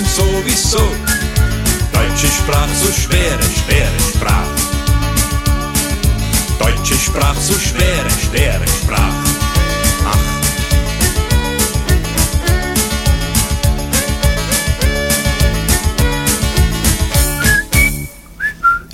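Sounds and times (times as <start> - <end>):
speech: 0.0 - 1.2, 2.2 - 4.7, 6.6 - 9.4
band with thumping drums and bass: 0.0 - 18.1
bright whistled melody: 0.9 - 4.3, 6.6 - 8.2, 17.4 - 18.9.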